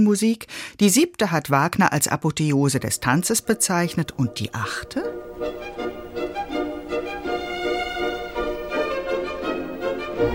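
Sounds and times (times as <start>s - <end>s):
speech: 0.0s - 6.0s
gentle orchestral music: 3.5s - 10.3s
woodwinds playing staccato notes imitating a ticking metronome: 5.1s - 10.3s.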